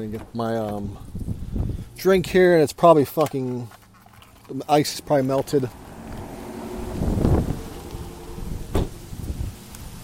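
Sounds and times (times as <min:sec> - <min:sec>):
speech: 0:00.0 - 0:01.3, 0:02.0 - 0:03.8, 0:04.5 - 0:05.8
strong wind outdoors in Houston buffeting the microphone: 0:00.8 - 0:02.4, 0:05.4 - 0:10.0.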